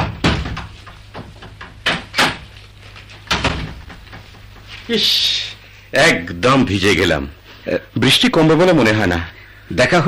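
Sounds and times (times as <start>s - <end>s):
wooden door clunking and knocking while being opened: 0.0s - 4.7s
speech: 4.9s - 10.0s.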